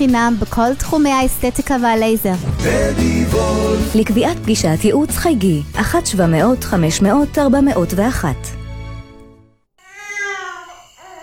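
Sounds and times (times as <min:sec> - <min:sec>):
speech: 0:00.0 - 0:08.6
neighbors' baby crying: 0:09.8 - 0:11.2.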